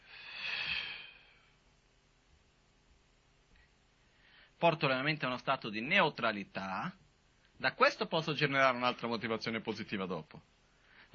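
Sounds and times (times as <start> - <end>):
deep breath pushed out forcefully: 0.0 - 1.5
speech: 4.6 - 7.0, 7.6 - 11.1.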